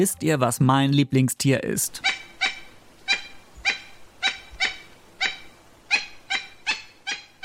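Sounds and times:
speech: 0.0 - 2.1
toucan calling with sharp yelping croaks: 1.9 - 7.4.

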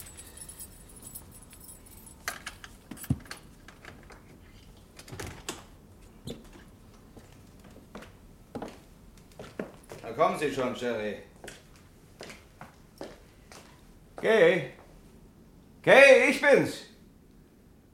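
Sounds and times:
keys jangling and clinking: 0.0 - 3.5
handling noises: 0.0 - 5.5
speech: 10.2 - 11.3, 14.2 - 14.8, 15.8 - 16.8.

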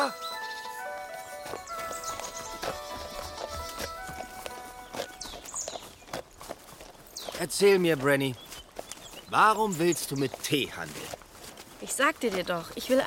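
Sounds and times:
donkey hooves clip-clopping at a walking pace: 0.0 - 13.0
speech: 7.4 - 8.4, 9.3 - 11.2, 11.8 - 13.0.

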